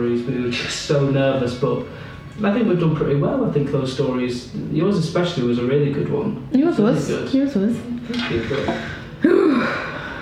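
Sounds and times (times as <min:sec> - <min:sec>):
speech: 0:00.0 - 0:09.4
deep gasping breath with a voiced sighing edge: 0:08.3 - 0:10.2.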